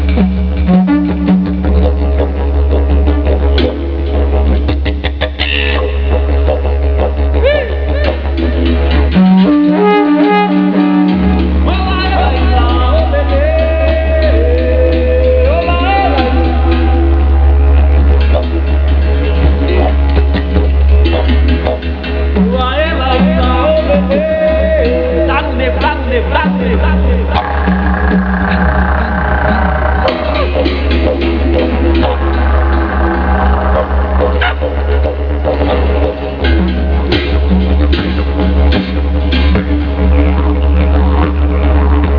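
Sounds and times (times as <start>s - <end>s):
didgeridoo: 0.0s - 42.1s.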